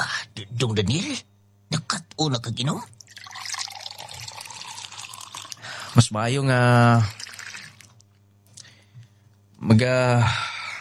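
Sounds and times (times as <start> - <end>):
speech: 0.4 - 3.0, 6.0 - 7.2, 9.6 - 10.4
liquor pouring into a glass: 2.9 - 6.0, 6.8 - 8.0.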